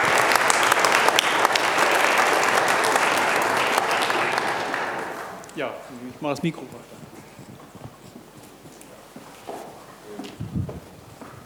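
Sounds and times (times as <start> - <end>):
audience applause after a presentation: 0.0 - 6.0
speech: 5.7 - 7.0.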